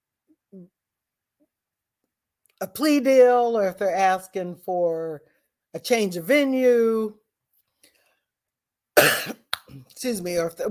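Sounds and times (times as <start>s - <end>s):
speech: 0.5s - 0.8s, 2.6s - 7.2s, 9.2s - 10.6s
rough cough: 9.0s - 9.5s.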